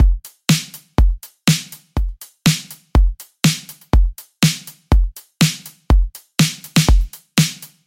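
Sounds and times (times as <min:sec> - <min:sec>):
full drum kit playing: 0:00.0 - 0:07.8.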